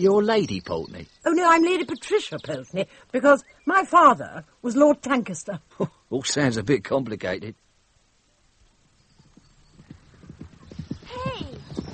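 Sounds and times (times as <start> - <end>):
speech: 0.0 - 7.6
pony hooves trotting: 9.0 - 11.9.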